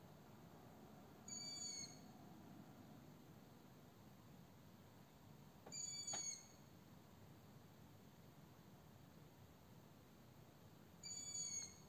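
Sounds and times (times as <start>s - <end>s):
constant low hiss: 0.0s - 11.8s
captive owl giving high level whistled calls: 1.3s - 2.1s, 5.7s - 6.6s, 11.0s - 11.8s.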